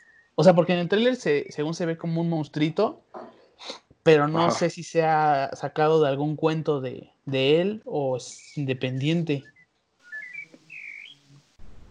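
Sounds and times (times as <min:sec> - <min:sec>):
quiet hiss: 0:00.0 - 0:11.9
speech: 0:00.4 - 0:09.5
small birds chirping outside: 0:08.3 - 0:11.9.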